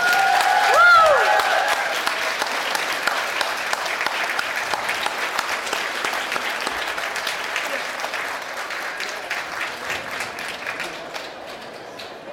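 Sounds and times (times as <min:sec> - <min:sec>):
whistles and cheers: 0:00.0 - 0:01.9
audience applause for an award announcement: 0:00.0 - 0:12.3.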